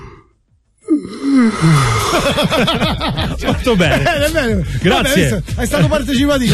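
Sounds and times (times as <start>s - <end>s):
man snoring: 0.0s - 2.3s
speech: 1.0s - 6.5s
laughter: 1.9s - 6.5s.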